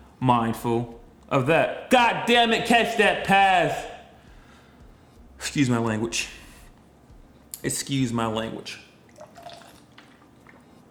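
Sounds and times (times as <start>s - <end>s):
speech: 0.2s - 3.9s, 5.4s - 6.4s, 7.6s - 8.8s
faint wet gulps: 9.1s - 10.8s
person sipping water: 9.1s - 10.8s.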